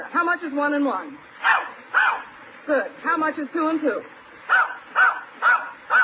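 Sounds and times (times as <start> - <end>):
speech: 0.1 - 1.6, 2.6 - 4.7
dog barking: 1.4 - 2.3, 4.5 - 6.0.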